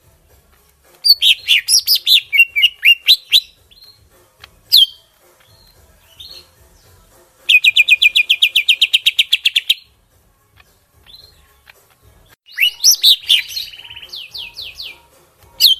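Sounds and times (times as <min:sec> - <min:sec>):
greater green leafbird calling in Kalimantan: 0:01.0 - 0:04.1, 0:04.7 - 0:09.8, 0:12.5 - 0:15.7.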